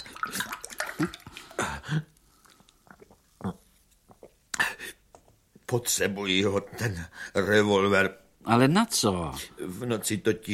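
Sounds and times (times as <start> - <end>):
water pouring into a glass: 0.0 - 1.6
speech: 5.7 - 10.5.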